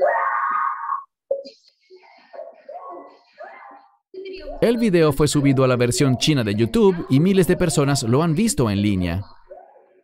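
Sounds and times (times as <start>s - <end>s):
woman letting out a loud wailing scream: 0.0s - 1.1s
speech: 4.6s - 9.4s.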